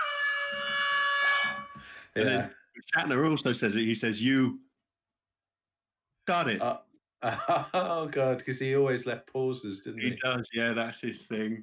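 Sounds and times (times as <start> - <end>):
loud brassy air horn blast: 0.0 - 2.0
laughter: 2.0 - 4.3, 6.4 - 11.6
speech: 2.2 - 4.7, 6.3 - 11.6.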